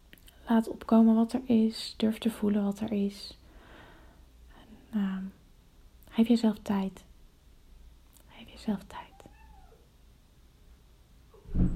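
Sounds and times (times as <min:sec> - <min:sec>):
speech: 0:00.5 - 0:03.4, 0:04.9 - 0:05.4, 0:06.2 - 0:07.1, 0:08.6 - 0:09.1
pet cat meowing: 0:09.1 - 0:09.9
thump: 0:11.4 - 0:11.7.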